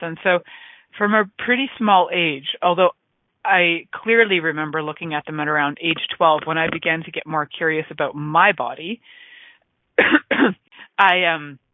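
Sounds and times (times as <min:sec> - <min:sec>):
speech: 0:00.0 - 0:09.2, 0:10.0 - 0:11.6
person coughing: 0:10.0 - 0:10.7.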